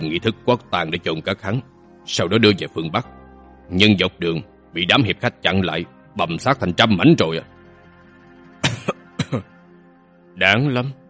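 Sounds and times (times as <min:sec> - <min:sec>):
speech: 0:00.0 - 0:07.5, 0:09.3 - 0:09.5, 0:10.4 - 0:11.0
soft dry throaty coughs: 0:08.6 - 0:09.6.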